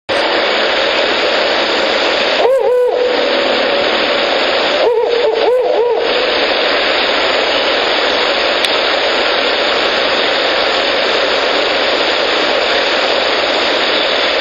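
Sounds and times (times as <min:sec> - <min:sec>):
constant loud hiss: 0:00.1 - 0:14.3
male Ural owl hooting: 0:02.4 - 0:06.6.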